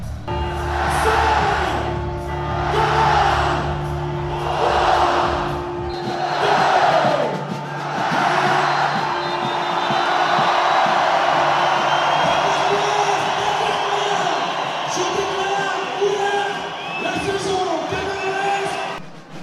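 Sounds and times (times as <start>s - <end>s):
large carnival crowd roaring and shouting: 0.0s - 19.4s
whoops and cheers: 8.5s - 19.0s.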